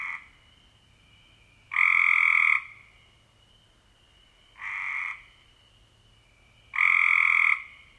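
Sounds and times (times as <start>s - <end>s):
Cope's gray treefrog giving harsh buzzy trills: 0.0s - 0.4s, 1.7s - 2.9s, 4.6s - 5.5s, 6.7s - 7.9s.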